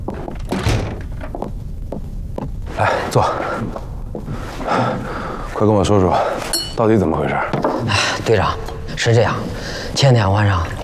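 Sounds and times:
door being shut: 0.2s - 1.3s
speech: 3.1s - 10.8s.

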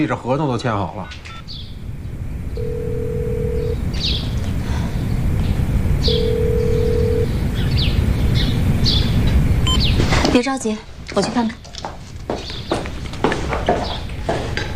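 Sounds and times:
speech: 0.0s - 1.6s, 10.4s - 12.0s
faint birds chirping: 1.0s - 11.6s, 12.2s - 14.7s
constant low rumble: 1.4s - 11.1s
telephone line tone beeps while placing a call: 2.6s - 3.8s, 6.1s - 7.3s, 9.6s - 9.8s.

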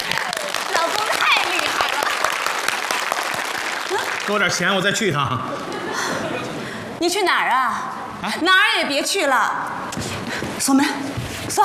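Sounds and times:
audience applause: 0.0s - 5.0s
speech: 4.3s - 5.8s, 7.0s - 9.8s, 10.6s - 11.6s
laughter: 5.0s - 6.9s.

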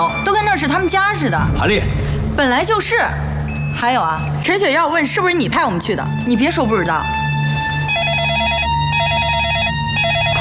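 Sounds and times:
speech: 0.6s - 7.2s
telephone ringing with a rapid warbling trill: 7.9s - 10.3s.

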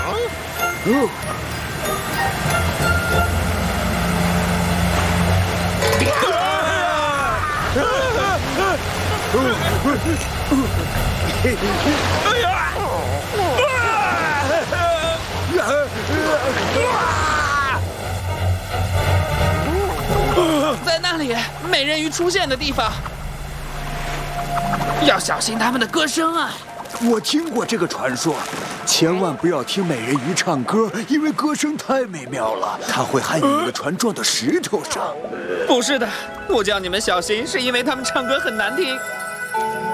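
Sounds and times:
rushing waterfall roaring: 0.0s - 31.1s
water splashing and sloshing: 0.0s - 39.0s
speech: 0.8s - 1.4s, 8.8s - 13.9s, 20.9s - 23.2s, 25.0s - 39.7s.

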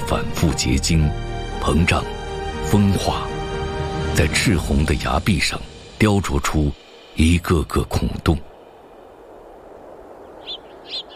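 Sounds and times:
steady low hiss: 0.0s - 11.1s
speech: 0.1s - 3.3s, 4.2s - 8.5s
Eurasian tree sparrows chirping from a flock in red canyon cliffs: 10.2s - 11.1s.

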